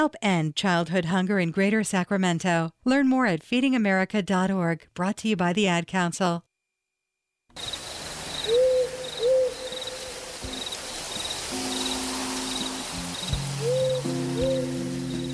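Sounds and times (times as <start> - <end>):
speech: 0.0 - 6.5, 7.6 - 7.8
crickets chirping: 7.5 - 15.3
burrowing owl hooting: 8.4 - 10.8, 11.6 - 15.1.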